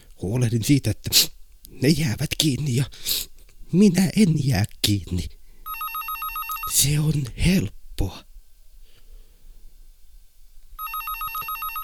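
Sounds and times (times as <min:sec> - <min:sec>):
speech: 0:00.2 - 0:05.4, 0:06.7 - 0:08.3
telephone with bright electronic ring: 0:05.7 - 0:06.9, 0:10.8 - 0:11.8.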